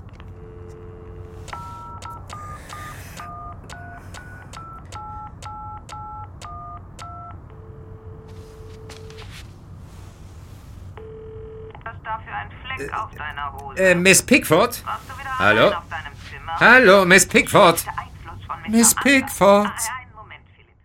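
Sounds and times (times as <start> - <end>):
constant noise: 0.0 - 20.8
answering machine beep on a law firm's phone line: 0.4 - 9.2
keypad-like dual tones: 0.4 - 9.2
speech: 12.8 - 15.9, 16.5 - 18.0, 18.7 - 20.0.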